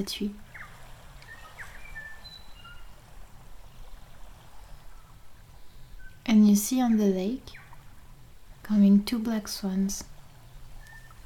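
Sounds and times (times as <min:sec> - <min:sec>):
speech: 0:00.0 - 0:00.4, 0:06.6 - 0:07.6, 0:08.7 - 0:10.1
rushing wash of water or wind near a lakeshore: 0:00.0 - 0:11.2
bird whistles and chirps near a lake: 0:00.5 - 0:02.9, 0:10.8 - 0:11.2.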